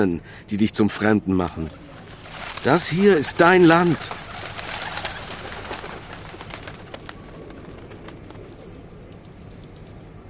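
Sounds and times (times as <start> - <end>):
speech: 0.0 - 1.9, 2.6 - 4.2
broadband noise: 0.0 - 10.2
pigeons cooing softly outdoors: 1.6 - 9.3.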